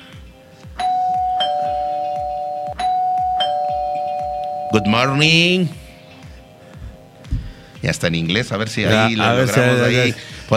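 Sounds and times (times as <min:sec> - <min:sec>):
low rhythmic thumping: 0:00.0 - 0:08.4
doorbell chiming ding-dong: 0:00.8 - 0:05.8
speech: 0:04.7 - 0:05.8, 0:07.9 - 0:10.5.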